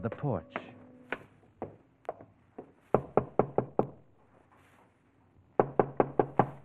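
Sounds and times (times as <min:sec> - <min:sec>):
speech: 0:00.0 - 0:00.7
knocking on the wooden door of a lonely farmhouse in the evening: 0:03.0 - 0:04.0, 0:05.6 - 0:06.6.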